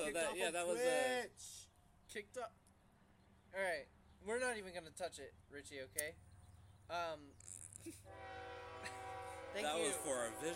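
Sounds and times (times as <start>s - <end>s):
speech: 0.1s - 2.6s, 3.5s - 6.3s, 6.9s - 10.5s
passing train horn: 8.1s - 10.5s.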